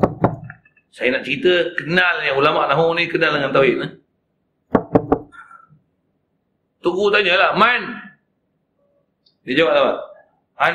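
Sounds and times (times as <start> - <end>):
knocking on a door: 0.0 - 0.5, 4.7 - 5.3
speech: 0.9 - 4.0, 6.8 - 8.0, 9.5 - 10.7.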